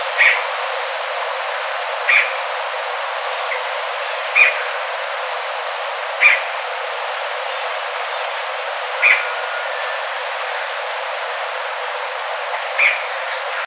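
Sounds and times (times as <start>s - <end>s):
bird giving short sharp calls: 0.0s - 0.7s, 1.4s - 6.6s, 8.1s - 10.1s, 12.6s - 13.6s
steady hiss of background noise: 0.0s - 13.6s.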